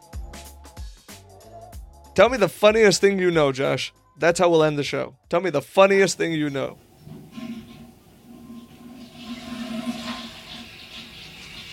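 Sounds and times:
speech: 2.2 - 7.2
toilet flushing: 6.2 - 11.7.

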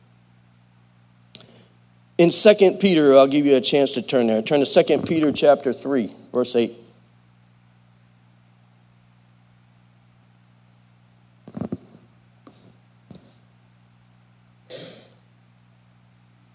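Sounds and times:
steady low electrical hum: 0.0 - 16.5
speech: 2.2 - 6.8
person clearing throat: 14.7 - 15.2
person coughing: 14.7 - 15.2.

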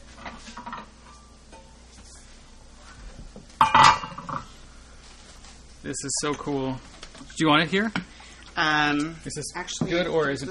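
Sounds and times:
plates and dishes clinking as they are set down: 0.2 - 1.8, 3.6 - 4.6
louder clattering knock of crockery: 3.6 - 4.2
speech: 5.9 - 10.4.

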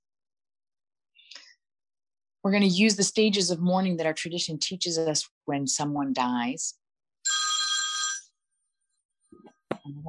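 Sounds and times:
speech: 2.4 - 6.8, 9.9 - 10.0
mobile phone ringing: 7.3 - 8.4.

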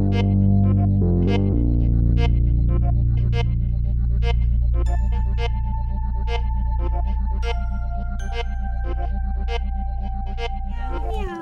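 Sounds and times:
steady low hum: 0.2 - 11.3.

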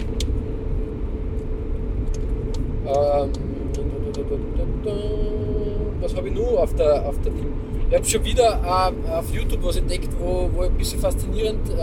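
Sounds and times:
car engine running: 0.0 - 11.8
speech: 6.0 - 11.8.

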